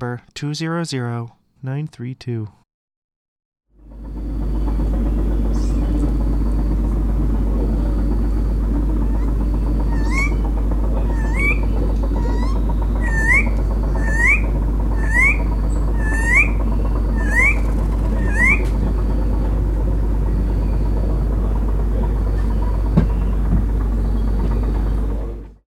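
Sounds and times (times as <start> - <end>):
speech: 0.0 - 2.6
steady low hum: 3.8 - 25.6
tiger parrot Psittacella upward-sweeping whistled calls: 9.0 - 18.9.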